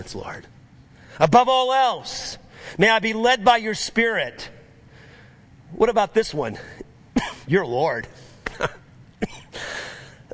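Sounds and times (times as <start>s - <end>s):
speech: 0.0s - 0.6s, 1.2s - 4.6s, 5.7s - 8.8s
person coughing: 7.1s - 7.5s, 8.4s - 10.3s.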